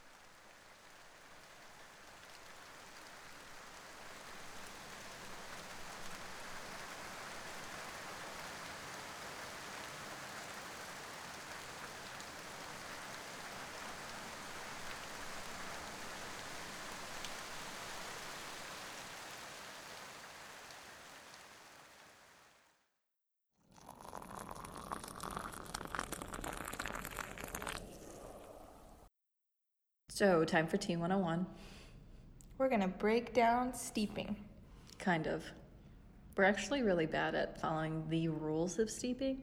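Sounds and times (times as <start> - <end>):
rain falling: 0.0 - 22.7, 23.9 - 28.8
speech: 30.2 - 31.8, 32.6 - 35.6, 36.4 - 39.4.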